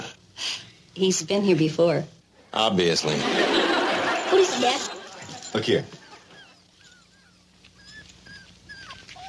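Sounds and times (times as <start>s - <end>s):
low hum: 0.0s - 9.2s
speech: 1.0s - 3.4s, 4.4s - 6.0s
laughter: 3.0s - 6.6s
puppies whimpering and squeaking: 5.2s - 9.2s.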